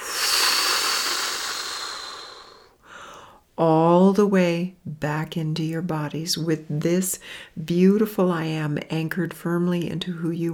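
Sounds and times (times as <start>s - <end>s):
big inhale and blowing exhale during a guided relaxation exercise: 0.0s - 3.2s
speech: 3.6s - 10.5s.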